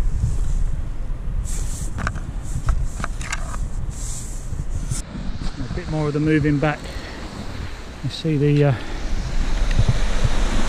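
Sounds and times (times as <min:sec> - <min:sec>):
wind buffeting the microphone: 0:00.0 - 0:10.6
waves washing onto the shore as the tide comes in: 0:05.0 - 0:10.6
speech: 0:05.9 - 0:07.0, 0:08.0 - 0:08.9.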